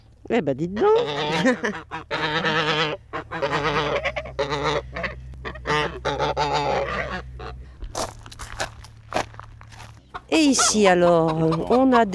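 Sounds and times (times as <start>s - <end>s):
speech: 0.3s - 3.9s, 10.4s - 12.1s
flock of white Toulouse geese honking while waiting to be fed: 0.6s - 12.1s
steady low rumble: 1.0s - 10.2s.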